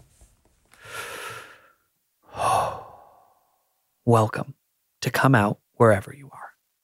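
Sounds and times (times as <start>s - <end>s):
person taking a deep breath: 0.8s - 3.6s
speech: 4.1s - 6.3s.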